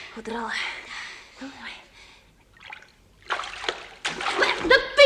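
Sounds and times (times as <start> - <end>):
speech: 0.2 - 0.8
water splashing and sloshing onto the floor: 2.5 - 4.9.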